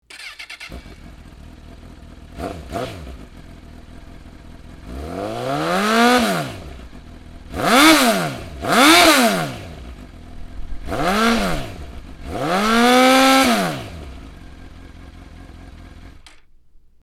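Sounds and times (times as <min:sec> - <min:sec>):
motorcycle exhaust with punched stock end can: 0:00.1 - 0:17.0.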